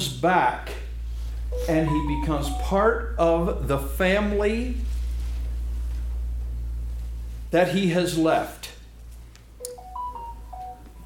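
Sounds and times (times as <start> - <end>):
speech: 0.0 - 0.7, 1.5 - 4.9, 7.5 - 8.7
low steady hum: 0.0 - 11.0
faint electronic phone ringtone with short melodic beeps: 1.6 - 3.0, 9.7 - 11.0.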